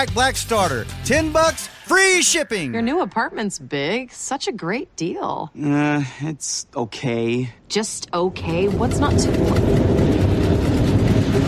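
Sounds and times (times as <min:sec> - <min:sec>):
speech: 0:00.0 - 0:10.3
subway train rumbling past beneath an apartment: 0:08.4 - 0:11.4.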